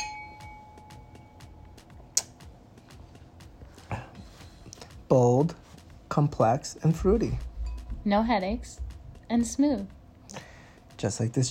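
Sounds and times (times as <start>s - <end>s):
glasses of red wine from Navarra clinking in a toast: 0.0s - 1.3s
speech: 5.1s - 5.6s, 6.2s - 10.0s, 11.0s - 11.4s.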